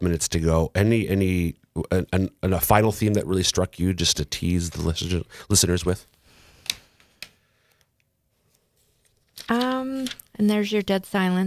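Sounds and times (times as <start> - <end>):
speech: 0.0 - 6.2, 9.5 - 11.4
paper rustling: 5.8 - 7.8, 8.4 - 11.4.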